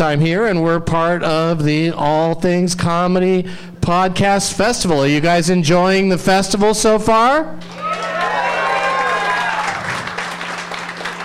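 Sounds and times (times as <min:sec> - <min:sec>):
speech: 0:00.0 - 0:07.8
overlapping shouts and whoops: 0:07.6 - 0:10.2
audience cheering and clapping: 0:07.6 - 0:11.2.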